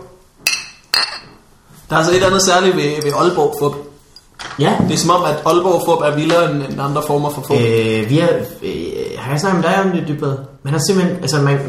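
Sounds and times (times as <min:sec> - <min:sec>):
glasses clinking during a toast: 0:00.5 - 0:01.5, 0:02.8 - 0:04.4
speech: 0:01.0 - 0:03.9, 0:04.5 - 0:11.6.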